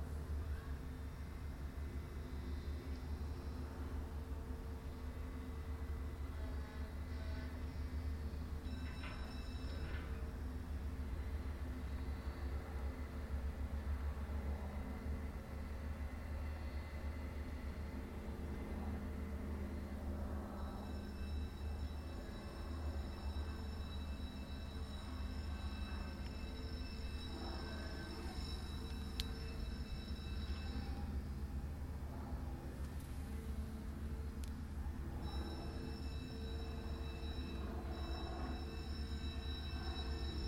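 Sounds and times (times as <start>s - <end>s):
passing rail vehicles rumbling at Kratonkade in Rotterdam: 0.0s - 40.4s
thin high metallic whines and squeals: 6.8s - 12.5s, 19.0s - 31.9s, 34.9s - 40.4s.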